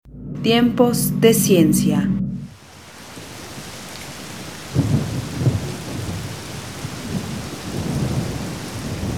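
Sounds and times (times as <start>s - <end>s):
low rolling thunder: 0.0s - 9.1s
speech: 0.4s - 2.2s
steady hiss of heavy rain: 2.5s - 9.1s.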